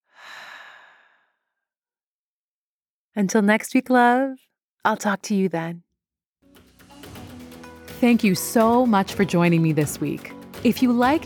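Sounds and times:
slow guided long soft exhale: 0.0 - 1.3
speech: 3.2 - 5.8, 8.0 - 11.2.

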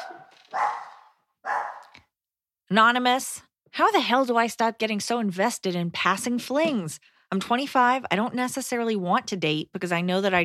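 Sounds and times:
dog barking: 0.0 - 2.0
speech: 2.7 - 10.4.

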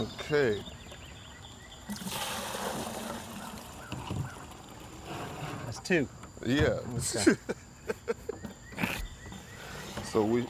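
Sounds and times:
speech: 0.0 - 0.8, 1.9 - 2.2, 5.9 - 7.6, 10.1 - 10.4
liquid being poured into a container: 1.9 - 4.0.

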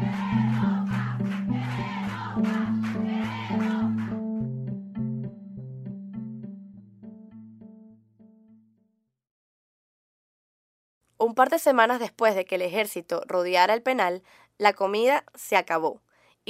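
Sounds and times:
crowd in a prison shouting for bread in unison: 0.0 - 4.1
melodic music: 0.0 - 8.8
speech: 11.2 - 16.4.

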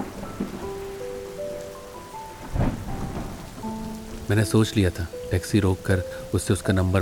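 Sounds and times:
low rumble of thunder: 0.0 - 0.9, 2.1 - 4.8
faint musical tones: 0.0 - 6.9
steady rain outside a building: 0.0 - 6.9
speech: 4.3 - 6.9.

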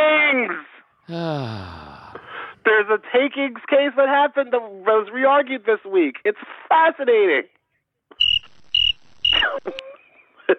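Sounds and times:
speech: 0.6 - 1.9, 2.6 - 7.6, 9.3 - 9.8
shrill cricket chirps: 8.2 - 9.8.

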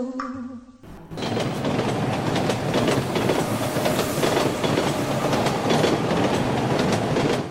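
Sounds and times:
train whistle: 0.9 - 6.8
train rumbling and clattering along railway tracks: 0.9 - 7.4.

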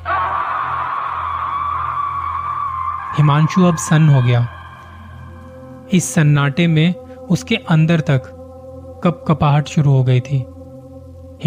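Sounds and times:
loud sustained strained wailing scream: 0.0 - 5.6
speech: 3.2 - 4.6, 5.9 - 8.4, 9.0 - 10.5.

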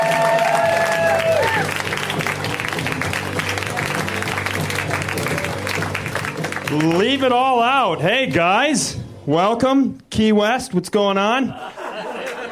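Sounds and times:
comedy show audience whooping and cheering: 0.0 - 6.0
large audience at a comedy show applauding: 0.0 - 7.6
speech: 6.7 - 11.8
laughter: 11.5 - 12.4.

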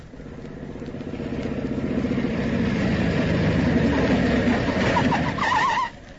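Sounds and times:
police motorcycle engine roaring along a road: 0.0 - 5.6.

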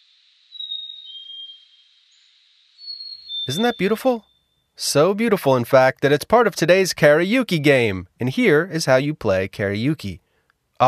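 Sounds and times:
songbird singing high whistled notes on a hike: 0.0 - 5.0
speech: 3.5 - 10.2.

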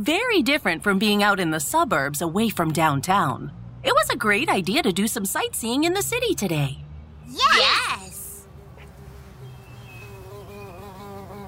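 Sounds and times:
speech: 0.0 - 8.1
bee buzzing: 7.9 - 11.4.

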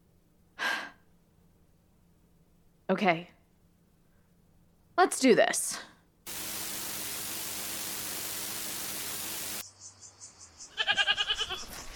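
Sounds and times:
speech: 2.9 - 3.3, 5.0 - 5.9
loud static hiss: 6.3 - 9.6
goat bleating: 10.7 - 11.6.

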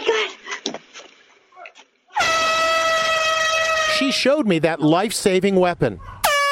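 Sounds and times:
extremely loud air horn blast: 2.2 - 4.1, 6.2 - 6.5
speech: 4.0 - 6.2.

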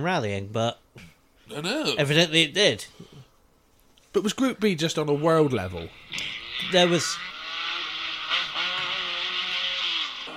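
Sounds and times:
speech: 0.0 - 3.0, 4.2 - 7.3
Stratos rally car engine running: 5.9 - 10.3.

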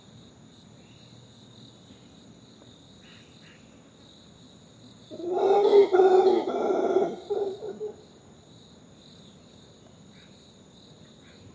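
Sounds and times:
crickets chirping with steady high hum at dawn: 0.0 - 11.5
female howler monkey howling with rough harmonic roar at dawn: 5.1 - 8.0.

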